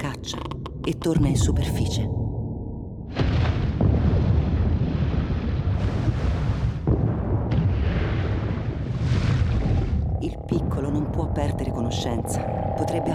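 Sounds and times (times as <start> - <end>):
speech: 0.2 - 2.2
underwater explosions with deep rumbling roar: 3.0 - 13.1.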